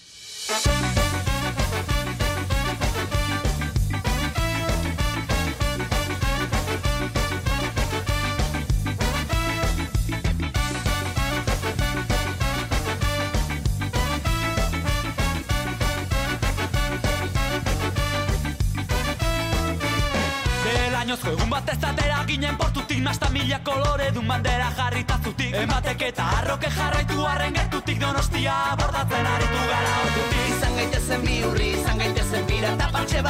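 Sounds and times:
full-band song for a pirate collective's tenth anniversary: 0.2 - 33.2
steady driving beat: 0.6 - 22.3, 28.8 - 33.2
speech: 24.3 - 33.2.

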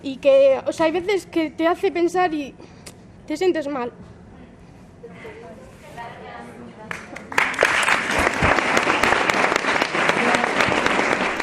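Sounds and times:
speech: 0.0 - 4.1
theatre audience applause after a performance: 7.3 - 11.4.

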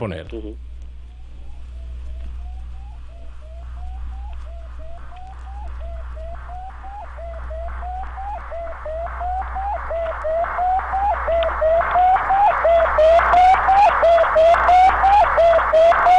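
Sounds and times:
low hum: 0.0 - 16.1
Sputnik satellite radio signal beeps: 1.2 - 15.6.

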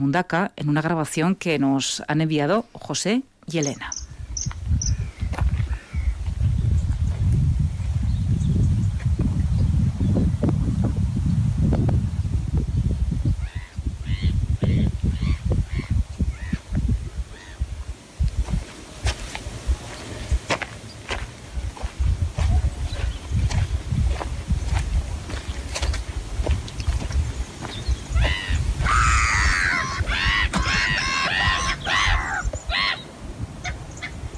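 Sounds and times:
speech: 0.0 - 4.0
steady wind rumble: 4.0 - 34.3
flock of agitated birds squawking and honking with goose-like calls: 13.4 - 16.6, 28.1 - 34.2
footsteps: 18.3 - 28.4.

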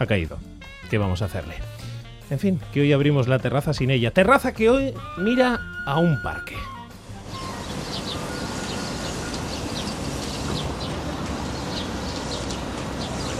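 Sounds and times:
speech: 0.0 - 6.8
steady loud outdoor machinery rumble: 7.0 - 13.3
small birds chirping in a park: 7.2 - 13.3.

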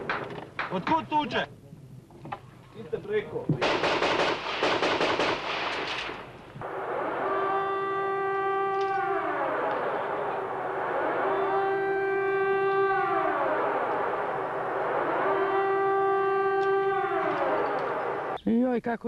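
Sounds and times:
steady noise: 0.0 - 19.0
air raid sirens wailing in rising and falling cycles: 6.6 - 18.4.

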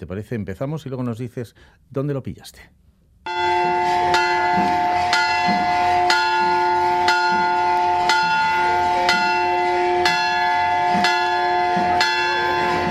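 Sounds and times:
speech: 0.0 - 2.9, 4.6 - 4.9
church bells pealing loud and resonant: 3.3 - 12.8.

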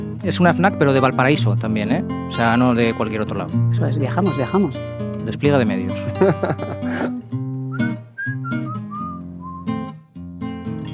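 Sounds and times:
steady musical backing with sustained low tones: 0.0 - 10.9
speech: 0.2 - 7.2
laughter: 6.0 - 7.2
person whistling a short tune: 7.7 - 9.9.

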